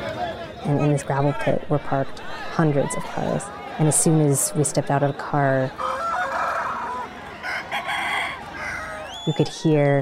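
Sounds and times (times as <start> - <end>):
speech: 0.6 - 5.9, 9.3 - 9.9
rooster crowing near an abandoned gravel pit: 5.8 - 9.1.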